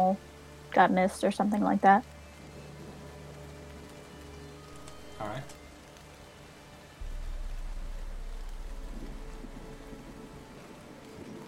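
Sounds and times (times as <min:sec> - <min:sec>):
speech: 0:00.0 - 0:02.2, 0:05.2 - 0:05.6
steady rain falling: 0:00.0 - 0:11.4
low rumble: 0:07.0 - 0:11.4.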